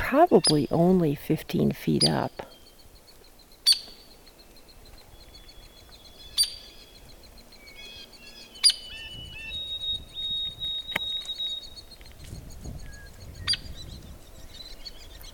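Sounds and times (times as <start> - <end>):
speech: 0.1 - 2.5
hairy woodpecker nestlings chattering at nest: 0.2 - 15.3.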